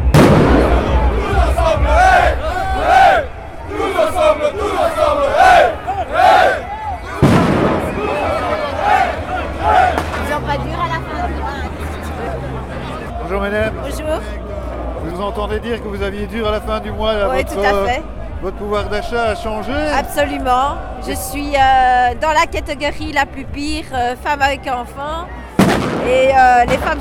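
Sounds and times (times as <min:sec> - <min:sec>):
sharp bang: 0:00.0 - 0:01.1, 0:07.2 - 0:08.4
protesters shouting and chanting at a joint union demonstration: 0:00.0 - 0:26.9
speech: 0:16.8 - 0:26.9.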